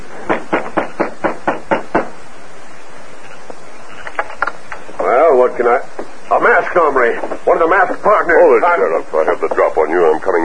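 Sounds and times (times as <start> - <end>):
man knocking on the front door of a house: 0.2 - 2.2
speech: 5.6 - 10.4.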